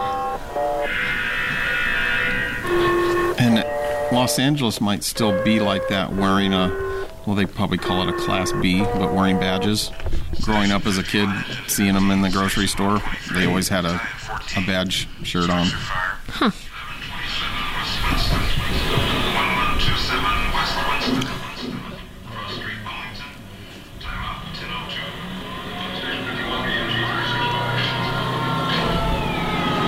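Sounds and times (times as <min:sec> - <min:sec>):
fire engine siren wails: 0:00.0 - 0:11.0, 0:23.2 - 0:29.8
fire engine rumbling: 0:00.0 - 0:29.8
indistinct voices murmuring: 0:00.0 - 0:29.8
speech: 0:04.2 - 0:16.6.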